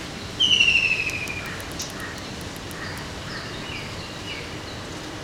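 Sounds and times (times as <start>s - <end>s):
White-throated kingfisher Halcyon smyrnensis calling: 0.4s - 3.5s.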